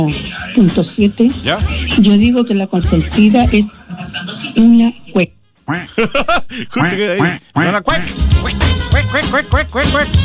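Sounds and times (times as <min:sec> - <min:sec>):
speech: 0:00.0 - 0:10.2
laughter: 0:02.8 - 0:05.0, 0:05.7 - 0:10.2
person imitating duck-like quacking: 0:06.6 - 0:10.2.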